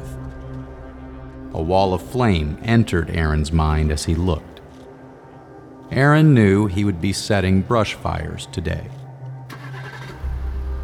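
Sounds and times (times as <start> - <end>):
speech: 1.5 - 4.5, 5.9 - 9.0
car engine starting: 9.5 - 10.8.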